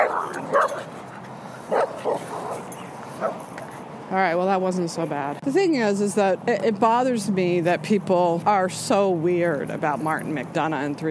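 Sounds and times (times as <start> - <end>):
dogs barking: 0.0 - 3.4
speech: 4.1 - 11.1.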